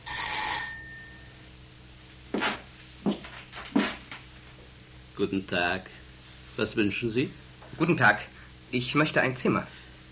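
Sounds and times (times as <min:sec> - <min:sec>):
hotel reception desk bell ding: 0:00.0 - 0:01.4
speech: 0:05.2 - 0:06.0, 0:06.6 - 0:09.8.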